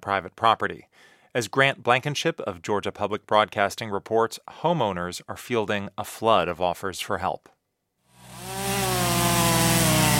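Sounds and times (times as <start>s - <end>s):
speech: 0.0s - 7.6s
chainsaw cutting storm-downed trees: 8.1s - 10.1s.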